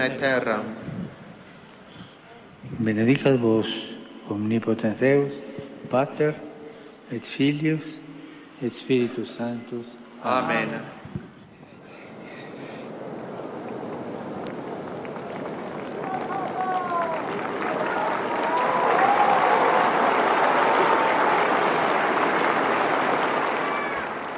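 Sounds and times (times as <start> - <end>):
speech: 0.0 - 0.8, 2.7 - 6.5, 7.1 - 8.0, 8.6 - 11.0
scattered voices: 10.9 - 19.6
large crowd of pilgrims applauding in St. Peter's Square: 12.3 - 24.3.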